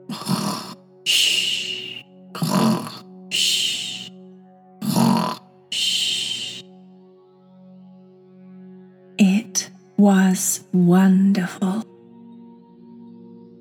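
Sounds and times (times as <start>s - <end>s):
loud snoring from someone asleep on a soft sofa: 0.0s - 4.1s, 4.8s - 6.6s, 9.2s - 11.8s
speech: 1.0s - 1.3s, 10.0s - 11.9s.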